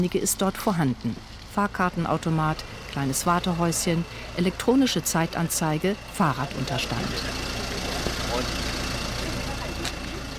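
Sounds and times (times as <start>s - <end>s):
speech: 0.0s - 7.5s
small bus engine idling: 0.0s - 10.3s.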